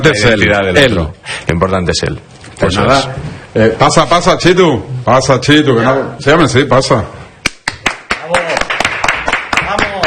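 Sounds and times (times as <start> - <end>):
speech: 0.0 - 7.2
canned applause sound effect: 7.8 - 10.0.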